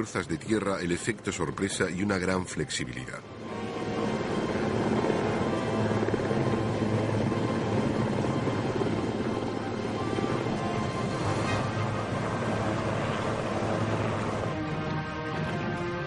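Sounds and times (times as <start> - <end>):
speech: 0.0 - 3.6
helicopter engine roar with low rumbling throb: 3.2 - 16.0.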